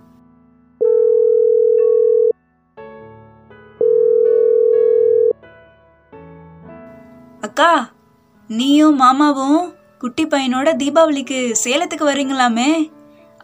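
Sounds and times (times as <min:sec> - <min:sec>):
soft music: 0:00.0 - 0:13.4
outgoing phone call ringback tone: 0:00.8 - 0:02.4, 0:03.8 - 0:05.4
speech: 0:07.6 - 0:07.9, 0:08.5 - 0:13.0.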